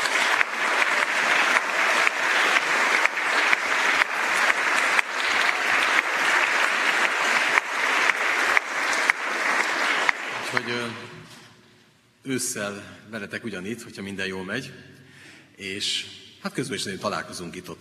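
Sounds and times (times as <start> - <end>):
crowd applauding: 0.0 - 11.1
speech: 12.3 - 14.9, 15.6 - 17.7.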